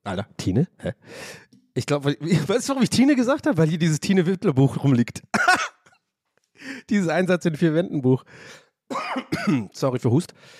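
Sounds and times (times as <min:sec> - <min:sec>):
speech: 0:00.0 - 0:05.7, 0:06.6 - 0:10.5
coughing and throat clearing: 0:05.3 - 0:06.0, 0:08.9 - 0:09.8.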